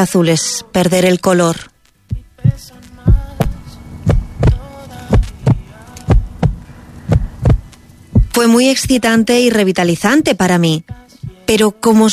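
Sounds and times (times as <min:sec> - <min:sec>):
speech: 0:00.0 - 0:01.7, 0:08.4 - 0:12.1
faint droning hum: 0:00.0 - 0:12.1
heartbeat thumping in heavy double beats: 0:02.1 - 0:09.4, 0:10.9 - 0:11.5.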